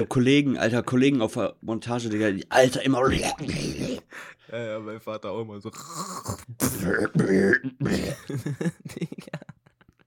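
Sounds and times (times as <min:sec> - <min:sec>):
speech: 0:00.0 - 0:09.5
person making exaggerated throat-clearing noises: 0:05.8 - 0:08.4
person coughing in short choppy hacks: 0:06.2 - 0:08.4
laughter: 0:08.1 - 0:10.0.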